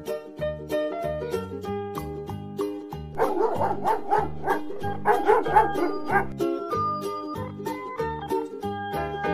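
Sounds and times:
bouncy music: 0:00.0 - 0:09.3
dog barking: 0:03.2 - 0:06.3.

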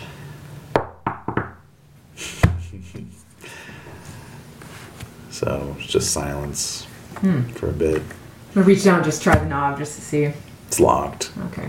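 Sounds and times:
knocking on an apartment door: 0:00.8 - 0:01.6
speech: 0:05.4 - 0:11.6.

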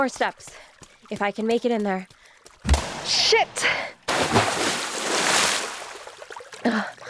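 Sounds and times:
speech: 0:00.0 - 0:04.7, 0:06.6 - 0:06.9
water sloshing and dripping: 0:00.0 - 0:07.0
person tripping and falling into water: 0:02.6 - 0:07.0.

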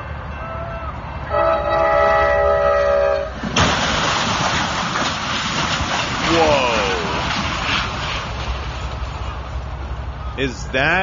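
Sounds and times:
train horn blaring: 0:00.0 - 0:03.4
train crashing into a truck rig stuck on the tracks: 0:03.3 - 0:09.6
speech: 0:10.4 - 0:11.0.

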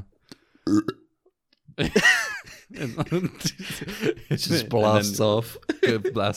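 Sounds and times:
speech: 0:00.7 - 0:01.0, 0:02.8 - 0:06.3
loud belch: 0:00.7 - 0:01.1
laughter: 0:01.8 - 0:06.3.

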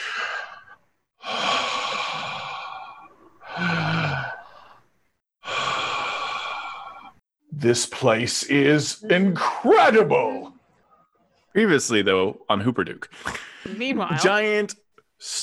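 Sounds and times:
slow deep breathing: 0:00.0 - 0:07.2
speech: 0:07.6 - 0:10.5, 0:11.6 - 0:15.4.

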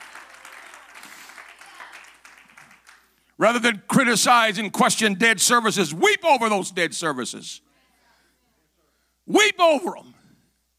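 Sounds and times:
audience at a morning service clapping: 0:00.0 - 0:03.4
speech: 0:03.4 - 0:07.7, 0:09.3 - 0:10.2.

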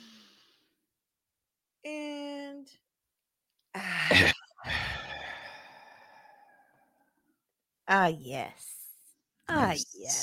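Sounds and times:
person drawing a deep breath in and sighing exhale: 0:03.8 - 0:07.0
speech: 0:04.1 - 0:04.4, 0:07.9 - 0:08.7, 0:09.5 - 0:10.2.

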